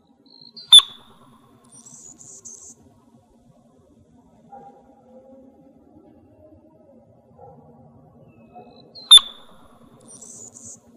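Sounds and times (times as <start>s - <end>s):
Anna's hummingbird dive display chirp in Arizona: 0.4s - 2.8s, 9.0s - 10.8s.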